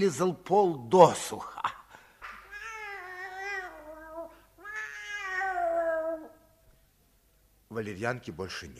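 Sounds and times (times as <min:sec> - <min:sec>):
speech: 0:00.0 - 0:01.6, 0:07.8 - 0:08.7
cat meowing: 0:02.5 - 0:06.4.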